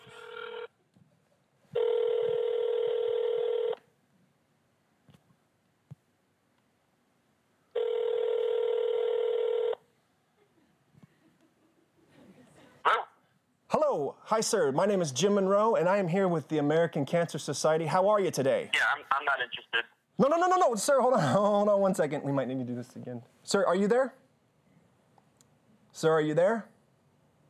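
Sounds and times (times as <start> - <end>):
phone call ringback tones on the line: 0.0 - 0.7, 1.8 - 3.8, 7.8 - 9.8
speech: 14.3 - 24.2, 26.0 - 26.7.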